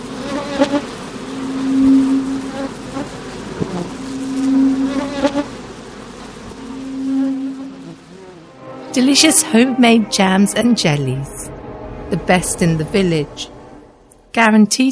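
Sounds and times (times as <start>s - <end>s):
bees buzzing reverberating in a room: 0.0s - 11.5s
speech: 9.0s - 11.5s, 12.1s - 13.6s, 14.3s - 14.9s.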